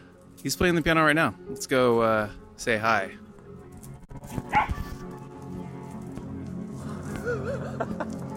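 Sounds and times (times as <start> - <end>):
speech: 0.4 - 3.3
dog chasing a laser pointer barking: 4.5 - 4.9
laughter: 6.8 - 8.3.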